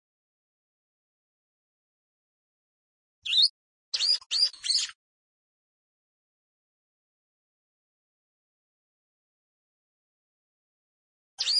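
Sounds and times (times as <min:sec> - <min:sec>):
plain prinia singing with scratchy buzzy chirps: 0:03.2 - 0:05.0, 0:11.4 - 0:11.5.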